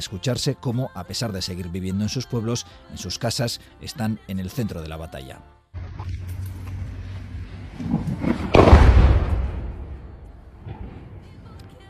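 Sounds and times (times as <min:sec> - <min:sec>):
speech: 0:00.0 - 0:06.3
steady low rumble: 0:05.8 - 0:11.7
bomb exploding in a war zone: 0:07.5 - 0:11.4.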